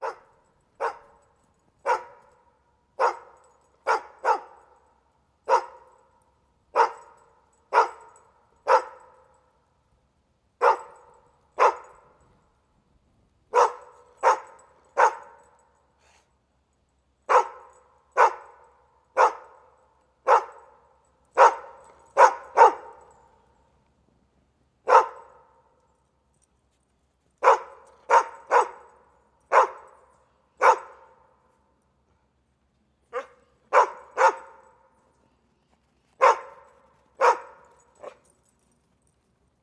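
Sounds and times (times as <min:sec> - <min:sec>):
dog barking: 0:00.0 - 0:02.4, 0:03.0 - 0:04.8, 0:05.4 - 0:06.1, 0:06.7 - 0:09.3, 0:10.6 - 0:12.2, 0:13.5 - 0:15.6, 0:17.3 - 0:23.2, 0:24.8 - 0:25.6, 0:27.4 - 0:30.0, 0:30.6 - 0:31.2, 0:33.1 - 0:34.8, 0:36.2 - 0:38.2
chain rattling: 0:00.0 - 0:09.7, 0:10.6 - 0:12.7, 0:13.6 - 0:23.9, 0:24.9 - 0:31.8, 0:33.2 - 0:39.6.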